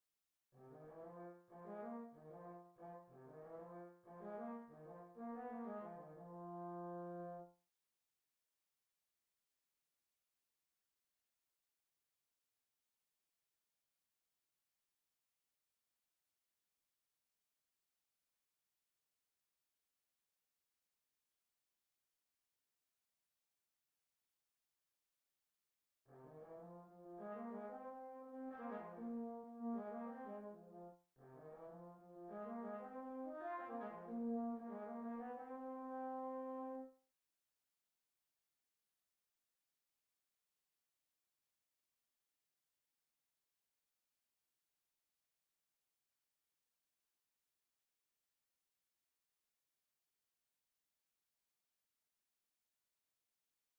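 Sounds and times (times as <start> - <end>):
trombone: 0.6 - 7.5, 26.1 - 36.9.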